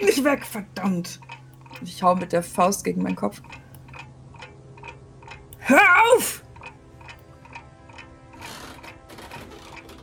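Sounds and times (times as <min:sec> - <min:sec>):
speech: 0:00.0 - 0:03.6, 0:05.7 - 0:06.4
broken grandfather clock with its pendulum torn out ticking: 0:00.0 - 0:10.0
person shouting: 0:05.6 - 0:06.4.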